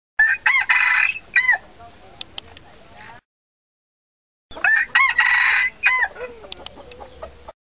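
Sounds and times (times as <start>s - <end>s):
small junglefowl crowing: 0.2s - 1.6s, 4.5s - 7.5s.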